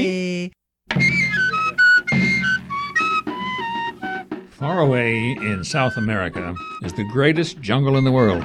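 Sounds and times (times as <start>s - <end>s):
whistling: 1.0s - 4.4s, 5.0s - 8.4s
speech: 4.6s - 8.4s.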